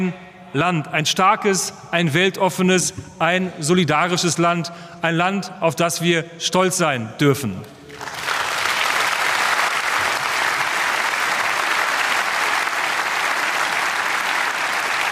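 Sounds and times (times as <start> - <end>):
speech: 0.0 - 7.8
audience applause: 7.9 - 15.1.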